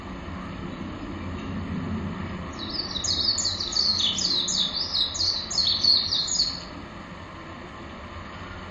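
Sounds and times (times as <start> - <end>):
low steady rumble: 0.0 - 8.6
Japanese white-eye twittering warble: 2.5 - 6.8.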